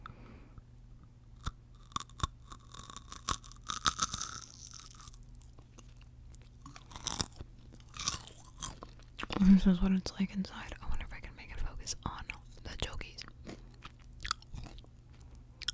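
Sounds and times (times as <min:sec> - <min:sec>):
biting and chewing a crunchy chocolate-covered corn ball: 0:01.4 - 0:09.4, 0:12.3 - 0:15.7
speech: 0:09.6 - 0:10.7.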